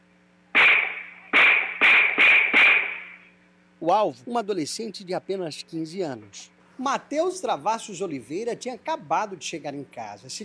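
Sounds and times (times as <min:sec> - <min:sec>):
low steady hum: 0:00.0 - 0:10.4
gunshots on a street at night: 0:00.6 - 0:03.2
speech: 0:03.8 - 0:10.4.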